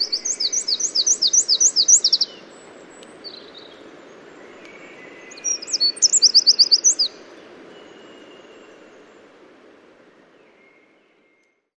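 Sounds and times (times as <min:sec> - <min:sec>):
Eurasian wren Troglodytes troglodytes singing fast high sharp notes: 0:00.0 - 0:03.6, 0:04.6 - 0:07.2
steady background hiss: 0:00.0 - 0:11.7.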